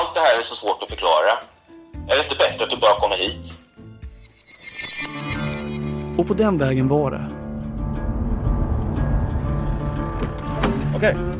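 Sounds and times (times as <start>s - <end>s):
speech: 0.4s - 3.6s, 6.2s - 7.4s, 11.0s - 11.3s
road hum in a moving car: 7.3s - 11.3s
engine rumble of a moving car: 7.4s - 11.3s.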